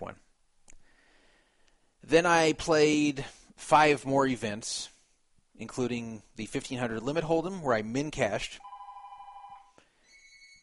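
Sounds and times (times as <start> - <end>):
speech: 2.1 - 4.9, 5.6 - 8.7
home telephone ringing with electronic tones: 8.6 - 10.6.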